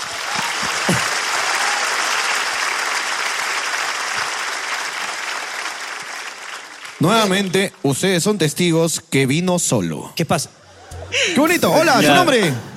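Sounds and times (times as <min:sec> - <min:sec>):
audience applauding at a live show: 0:00.0 - 0:07.6
speech: 0:07.0 - 0:12.7.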